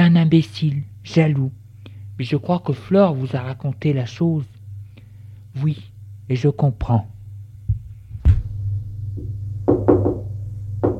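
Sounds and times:
steady low hum: 0:00.0 - 0:10.9
speech: 0:00.3 - 0:01.6, 0:02.2 - 0:04.6, 0:05.6 - 0:07.2
knocking on a door: 0:09.2 - 0:10.9.

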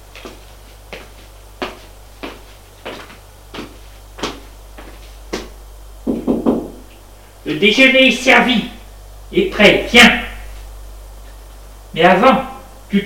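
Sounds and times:
knocking on a wooden bedroom door: 0:06.0 - 0:06.9
speech: 0:07.5 - 0:08.7, 0:09.3 - 0:10.2, 0:12.0 - 0:13.0.

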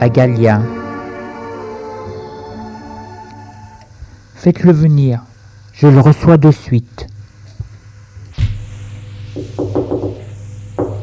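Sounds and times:
speech: 0:00.0 - 0:00.8, 0:04.4 - 0:07.1
constant low electrical hum: 0:00.0 - 0:11.0
sharp knocks on a door: 0:09.4 - 0:10.2, 0:10.8 - 0:11.0.

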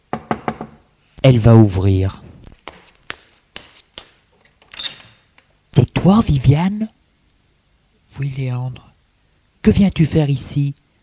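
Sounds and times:
knocking on a door: 0:00.1 - 0:00.9
speech: 0:01.2 - 0:02.2, 0:05.8 - 0:07.0, 0:08.2 - 0:08.9, 0:09.6 - 0:10.8.

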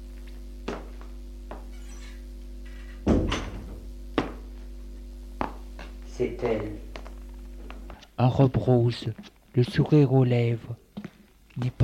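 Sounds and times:
steady low electrical hum: 0:00.0 - 0:11.8
door opening with wooden clunks: 0:03.0 - 0:03.8
speech: 0:06.2 - 0:06.9, 0:08.2 - 0:10.8, 0:11.6 - 0:11.8.

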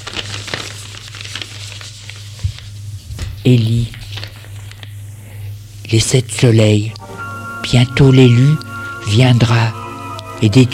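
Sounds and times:
paper crinkling while being unfolded: 0:00.0 - 0:05.1
speech: 0:03.4 - 0:04.0, 0:05.9 - 0:07.0, 0:07.7 - 0:09.8, 0:10.4 - 0:10.7
low steady hum: 0:04.7 - 0:10.7.

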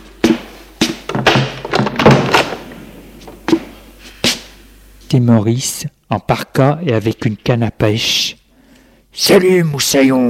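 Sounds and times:
wooden door being opened: 0:01.0 - 0:03.7
speech: 0:05.1 - 0:08.4, 0:09.2 - 0:10.2.

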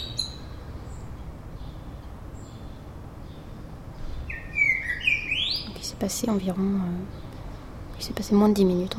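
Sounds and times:
nestlings chirping for food in Paris: 0:00.0 - 0:01.8, 0:04.2 - 0:08.4
speech: 0:06.0 - 0:07.2, 0:08.0 - 0:08.9.

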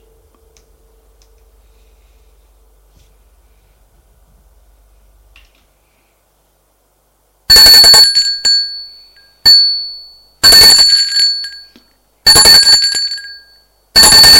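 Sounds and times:
wake-up bell ringing: 0:07.5 - 0:14.3.

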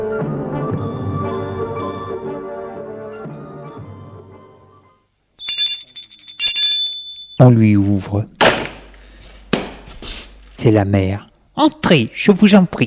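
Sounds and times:
music: 0:00.0 - 0:05.2
electric doorbell ringing at a fifth-floor apartment door: 0:05.4 - 0:07.6
speech: 0:07.4 - 0:08.3, 0:10.6 - 0:12.8.

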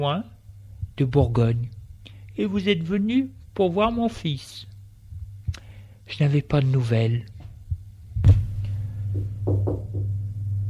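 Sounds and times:
speech: 0:00.0 - 0:00.4, 0:01.0 - 0:01.8, 0:02.4 - 0:04.7, 0:06.1 - 0:07.3
low steady hum: 0:00.0 - 0:10.6
knocking on a door: 0:09.1 - 0:10.2.

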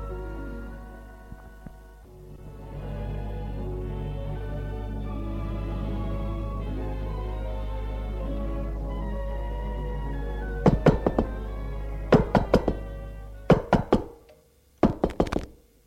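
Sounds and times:
low steady hum: 0:00.0 - 0:15.8
firm knocking on a door: 0:10.6 - 0:11.4, 0:12.1 - 0:12.9, 0:13.5 - 0:14.2, 0:14.8 - 0:15.5.

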